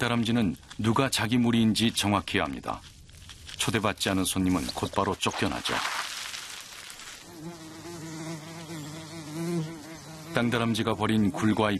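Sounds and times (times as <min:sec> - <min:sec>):
speech: 0:00.0 - 0:03.0, 0:03.6 - 0:06.1, 0:10.4 - 0:11.7
bees buzzing around a queen bee at an abandoned ground squirrel burrow: 0:07.2 - 0:11.4.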